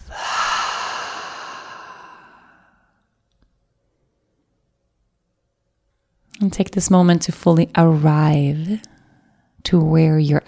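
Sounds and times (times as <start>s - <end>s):
deep breath in through the nose and out through the mouth: 0.0s - 3.1s
speech: 6.4s - 8.9s, 9.6s - 10.4s.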